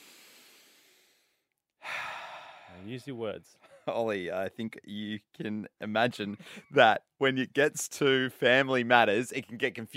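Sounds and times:
group of people taking a deep breath together: 0:00.0 - 0:02.9
speech: 0:02.7 - 0:09.9.

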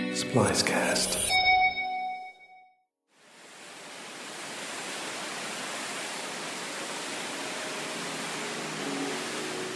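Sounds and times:
speech: 0:00.2 - 0:01.5
short ringing chime: 0:01.3 - 0:02.7
loud roar of water rushing down the world's tallest indoor waterfall: 0:03.2 - 0:09.7.

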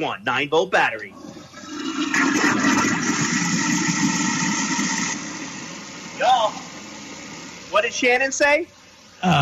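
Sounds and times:
speech: 0:00.0 - 0:01.4, 0:07.7 - 0:09.4
toilet flushing after a 9-volt battery is dropped in: 0:01.2 - 0:06.2.

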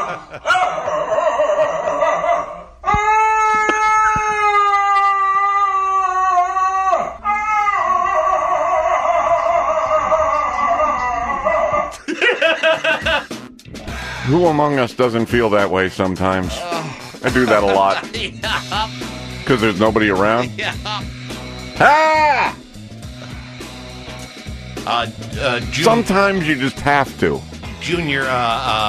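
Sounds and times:
laughter: 0:00.0 - 0:00.6, 0:09.1 - 0:13.4, 0:16.7 - 0:19.0
dog howling and groaning: 0:00.0 - 0:12.0, 0:21.8 - 0:22.6
speech: 0:00.2 - 0:01.2, 0:14.3 - 0:21.1, 0:21.8 - 0:22.6, 0:24.8 - 0:28.8.

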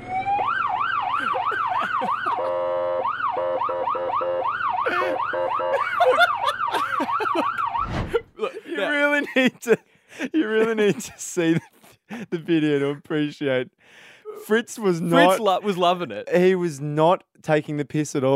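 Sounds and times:
fake police-style siren wailing and yelping: 0:00.0 - 0:08.0
laughter: 0:01.0 - 0:02.6, 0:04.9 - 0:12.8, 0:15.0 - 0:16.1
burst of noise: 0:07.7 - 0:08.3
speech: 0:09.6 - 0:09.9, 0:11.0 - 0:18.3.

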